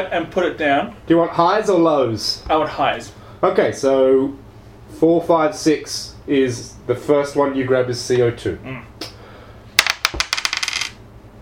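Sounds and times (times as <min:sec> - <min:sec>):
speech: 0:00.0 - 0:08.9
flipped coin landing on a hard surface: 0:09.8 - 0:11.0.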